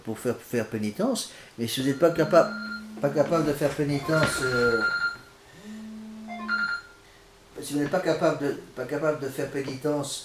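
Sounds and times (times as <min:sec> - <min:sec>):
speech: 0:00.0 - 0:05.0, 0:07.6 - 0:10.2
mobile phone ringing with electronic tone: 0:01.8 - 0:07.0.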